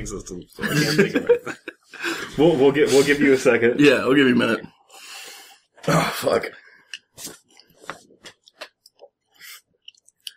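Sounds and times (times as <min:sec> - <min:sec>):
speech: 0:00.0 - 0:04.8, 0:05.8 - 0:06.6
laughter: 0:00.5 - 0:03.2
chewing crunchy uncooked rice: 0:08.3 - 0:10.3.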